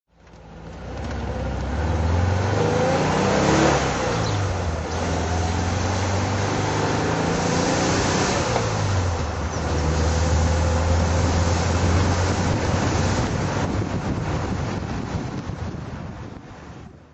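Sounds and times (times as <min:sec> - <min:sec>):
VW 1303 driving: 0:00.2 - 0:17.1.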